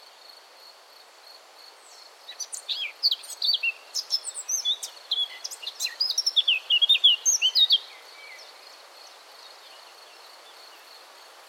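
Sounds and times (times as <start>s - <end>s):
faint steady hiss: 0.0s - 11.4s
Eurasian blackcap Sylvia atricapilla song: 2.3s - 8.5s.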